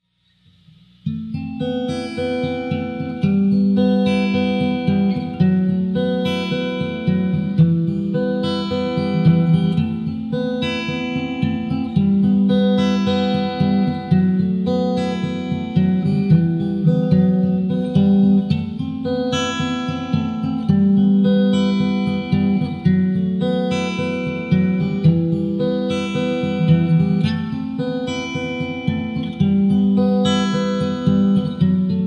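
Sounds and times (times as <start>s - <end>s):
guitar instrumental music: 0.3s - 32.0s.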